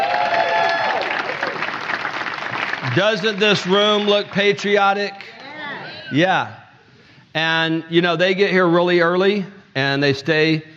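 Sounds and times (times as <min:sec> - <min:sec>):
audience in a room applauding a team: 0:00.0 - 0:04.8
speech: 0:02.8 - 0:05.4, 0:06.1 - 0:06.6, 0:07.4 - 0:10.7.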